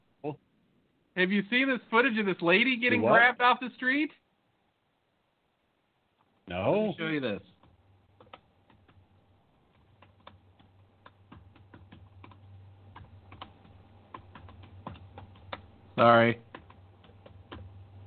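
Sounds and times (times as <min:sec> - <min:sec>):
low steady hum: 0:00.0 - 0:18.0
speech: 0:00.2 - 0:00.4, 0:01.2 - 0:04.2, 0:06.5 - 0:07.5, 0:16.0 - 0:16.4
typing on a Bluetooth computer keyboard: 0:07.6 - 0:09.1, 0:09.7 - 0:17.7.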